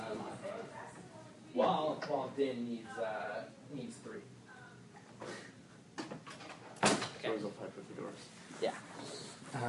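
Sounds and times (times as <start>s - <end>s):
speech: 1.7s - 4.4s, 7.2s - 9.6s
sharp latching thud of a door: 6.0s - 7.2s.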